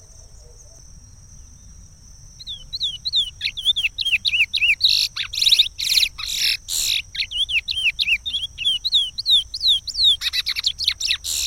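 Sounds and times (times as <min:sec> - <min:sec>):
chestnut-bellied seed finch giving a varied whistled song with chattering notes: 0:02.4 - 0:11.4.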